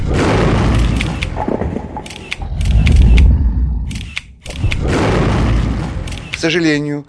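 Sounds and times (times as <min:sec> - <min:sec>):
low rumbling background: 0:00.0 - 0:06.2
crisp camera shutter clicks: 0:00.8 - 0:01.4, 0:02.1 - 0:04.8, 0:06.0 - 0:06.5
speech: 0:06.4 - 0:07.0.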